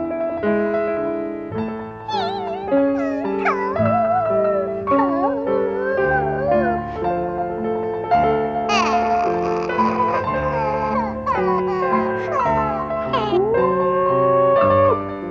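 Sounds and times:
slow sad music: 0.0s - 15.2s
dog howling and crying: 2.1s - 7.6s, 8.7s - 15.1s.

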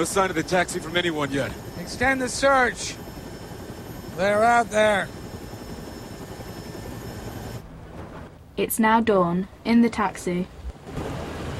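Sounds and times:
speech: 0.0s - 3.0s, 4.2s - 5.2s, 8.6s - 11.0s
helicopter rotor noise during an aerial search: 0.0s - 8.5s.

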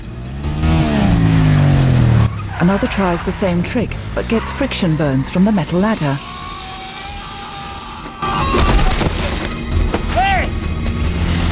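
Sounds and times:
two motorcycles revving and accelerating away: 0.0s - 11.4s
speech: 2.6s - 6.4s.

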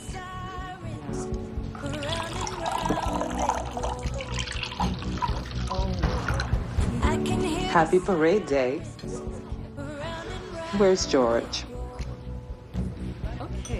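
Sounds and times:
busy music: 0.0s - 13.7s
coffee pouring into a cup: 1.8s - 6.5s
speech: 7.8s - 9.3s, 10.8s - 11.7s.

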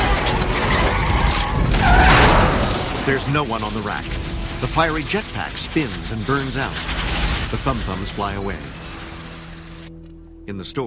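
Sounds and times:
SUV engine roaring: 0.0s - 6.9s
SUV tires skidding in street traffic: 0.0s - 9.7s
speech: 3.1s - 8.8s, 10.5s - 10.8s.

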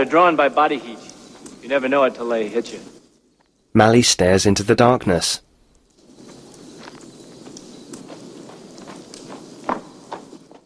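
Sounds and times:
speech: 0.0s - 1.1s, 1.7s - 3.0s, 3.7s - 5.5s
footsteps stomping back toward a campfire: 8.8s - 10.6s.

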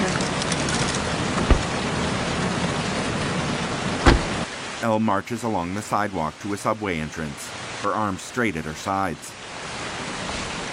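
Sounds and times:
car windshield wipers running: 0.0s - 1.9s, 4.0s - 4.5s
steady rain on a rental car: 0.0s - 10.7s
soft thuds: 1.4s - 1.7s, 4.0s - 4.4s
speech: 4.8s - 9.4s.

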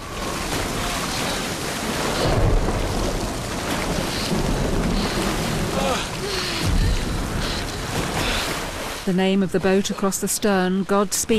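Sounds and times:
thunder rumbling at sea: 0.0s - 8.9s
rain at sea around a boat: 0.0s - 9.2s
waves washing at sea around a boat: 0.0s - 11.3s
speech: 9.1s - 11.3s.

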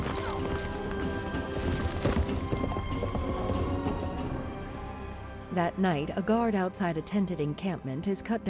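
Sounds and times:
horse and camel hooves clopping across a desert: 0.0s - 4.5s
speech: 5.6s - 8.4s.

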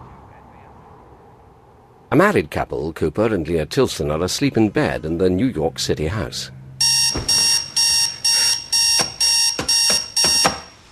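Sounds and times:
speech: 2.1s - 7.2s
electronic alarm clock beeping at the bedside: 6.8s - 10.9s.

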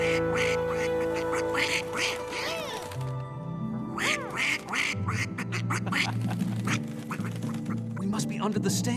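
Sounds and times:
grumpy duck quacking at a theater: 0.0s - 2.9s, 3.9s - 7.7s
speech: 8.4s - 8.9s.

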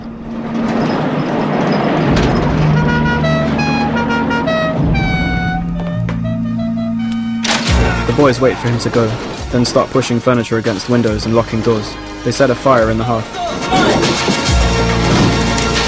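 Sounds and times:
car engine rumble driving away at sunset: 0.0s - 15.8s
sustained high tones stepping in pitch: 3.1s - 8.6s
speech: 8.2s - 14.2s.

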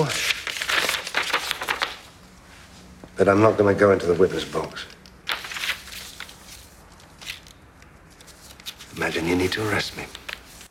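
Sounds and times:
paper crinkling as an envelope is opened and a summons pulled out: 0.0s - 2.1s, 4.4s - 10.6s
speech: 3.2s - 5.0s, 9.1s - 10.2s.

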